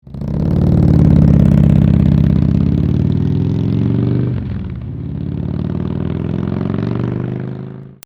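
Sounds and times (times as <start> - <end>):
aircraft takeoff: 0.0 - 8.0.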